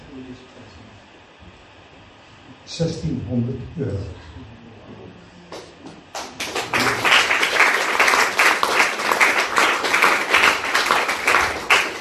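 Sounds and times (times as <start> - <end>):
speech: 0.2 - 0.7, 2.7 - 4.5
audience applause for gift contributors: 6.1 - 11.9.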